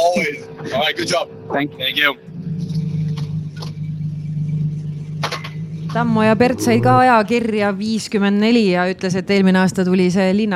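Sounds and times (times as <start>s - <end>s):
speech: 0.2s - 2.7s, 6.0s - 10.5s
car engine droning under throttle during a drifting and doughnut driving event: 2.2s - 8.2s.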